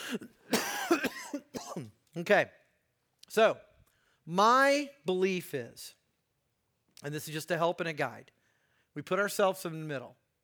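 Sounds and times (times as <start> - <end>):
person coughing: 0.0 - 1.9
speech: 0.1 - 0.3, 1.8 - 2.6, 3.3 - 3.7, 4.3 - 6.0, 7.0 - 8.4, 9.0 - 10.2.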